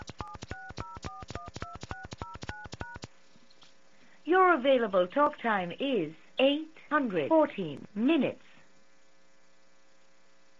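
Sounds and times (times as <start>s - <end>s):
telephone keypad DTMF tones on an automated calling line in India: 0.0s - 3.1s
speech: 4.3s - 8.4s.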